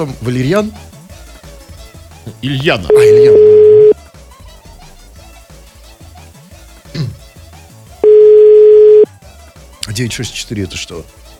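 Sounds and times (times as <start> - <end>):
speech: 0.0 - 0.9, 2.3 - 3.8, 10.0 - 11.2
loud steady mid-pitched telephone dial tone: 2.9 - 4.0, 8.0 - 9.1.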